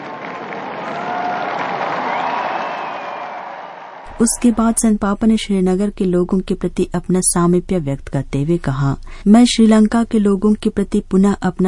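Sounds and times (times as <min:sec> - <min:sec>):
large crowd applauding: 0:00.0 - 0:04.7
speech: 0:04.2 - 0:11.6.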